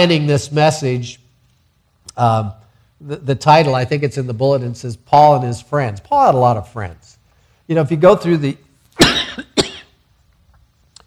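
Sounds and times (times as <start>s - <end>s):
speech: 0.0s - 1.2s, 2.2s - 9.5s
person with a cold coughing: 9.0s - 10.0s.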